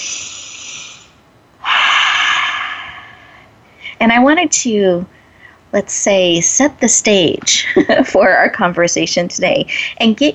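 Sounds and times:
deep breaths drawn in: 0.0 - 4.0
speech: 4.0 - 10.3.

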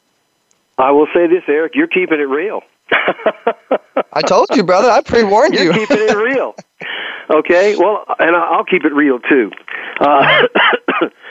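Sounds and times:
speech: 0.8 - 6.7, 7.3 - 11.2
laughter: 2.9 - 6.8, 10.0 - 10.5
man coughing: 5.5 - 7.0, 10.0 - 11.2.

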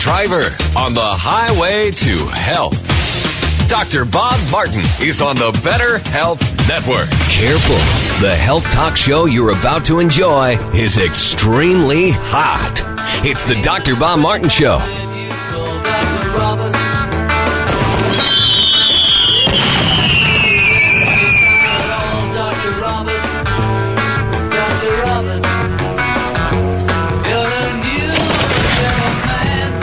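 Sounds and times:
music: 0.0 - 29.8
speech: 0.1 - 3.0, 3.7 - 15.0
fireworks exploding: 17.6 - 22.8
descending firework whistle streaking overhead: 18.0 - 22.3.

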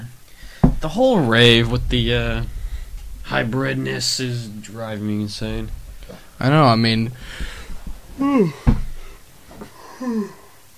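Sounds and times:
speech: 0.8 - 2.6, 3.3 - 7.6, 8.2 - 8.7, 10.0 - 10.4
person yawning: 8.2 - 8.7, 9.8 - 10.6.

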